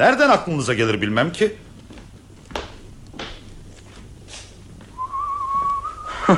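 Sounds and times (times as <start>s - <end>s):
speech: 0.0s - 1.6s
quiet rustling: 0.7s - 5.9s
person whistling softly: 5.0s - 6.3s.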